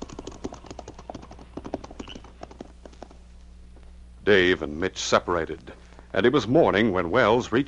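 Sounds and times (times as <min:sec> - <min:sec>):
several ridden horses trotting away with clopping hoofbeats: 0:00.0 - 0:03.3
speech: 0:04.2 - 0:07.6.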